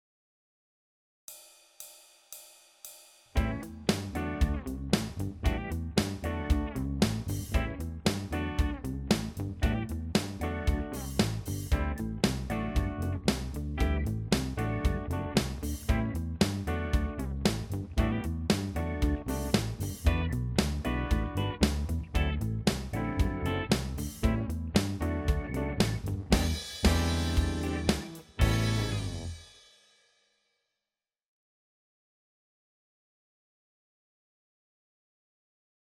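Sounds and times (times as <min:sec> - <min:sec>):
blues guitar backing: 0:03.4 - 0:29.4.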